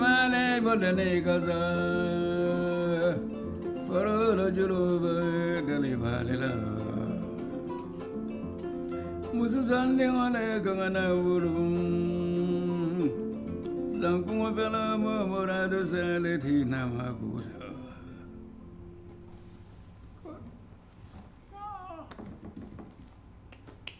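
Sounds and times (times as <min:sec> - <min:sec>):
kora playing a melody: 0:00.0 - 0:17.4.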